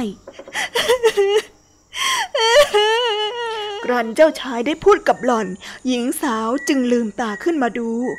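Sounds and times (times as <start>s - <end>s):
speech: 0.0s - 1.5s, 3.9s - 8.1s
woman sobbing and wailing under a tree in a forest: 0.5s - 4.4s.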